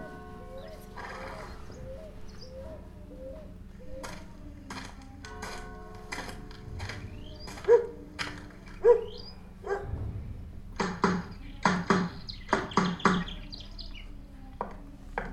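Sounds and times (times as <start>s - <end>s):
birds chirping outdoors: 0.0s - 14.9s
dog barking outdoors: 7.6s - 8.0s, 8.8s - 9.9s.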